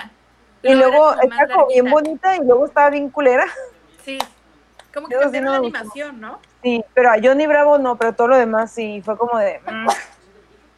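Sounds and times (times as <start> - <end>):
speech: 0.6 - 4.3, 5.0 - 10.0
sneeze from an allergy: 9.7 - 10.2.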